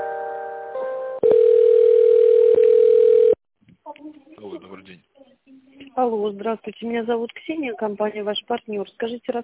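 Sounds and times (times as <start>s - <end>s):
chord-like telephone tone while an office call is transferred: 1.2s - 3.4s
speech: 4.8s - 9.4s.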